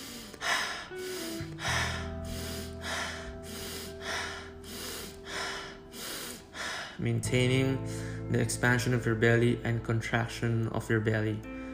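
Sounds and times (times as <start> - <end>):
rapid breathing in through the nose and out through the mouth during a breathwork exercise: 0.0 - 7.0
low sustained drone: 0.0 - 8.3
speech: 7.0 - 11.5.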